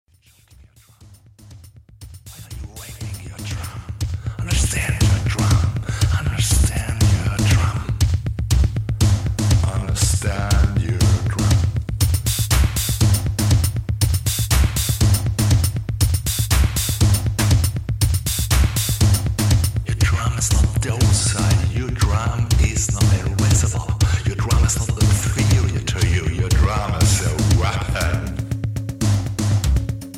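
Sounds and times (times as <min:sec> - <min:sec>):
drums being hit hard: 0:01.4 - 0:30.1.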